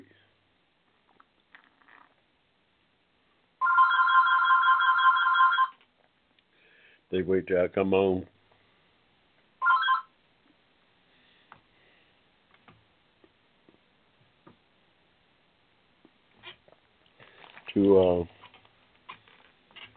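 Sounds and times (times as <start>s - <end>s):
landline telephone ringing: 3.6s - 5.8s, 9.6s - 10.1s
speech: 7.1s - 8.3s.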